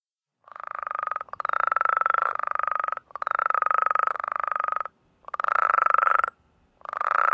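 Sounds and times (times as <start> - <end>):
New Mexico spadefoot trilling calls: 0.4 - 7.3.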